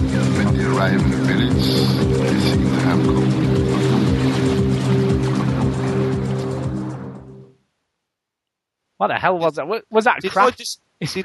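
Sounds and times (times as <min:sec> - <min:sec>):
dense hissing noise wash: 0:00.0 - 0:07.1
steady sustained low synth tones in German electronic music: 0:00.0 - 0:07.5
speech: 0:00.8 - 0:03.8, 0:09.0 - 0:11.2.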